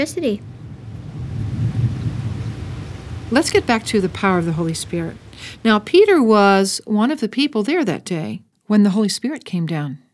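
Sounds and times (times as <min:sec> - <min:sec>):
speech: 0:00.0 - 0:00.5, 0:03.3 - 0:10.0
thunder rumbling during a thunderstorm: 0:00.0 - 0:06.8.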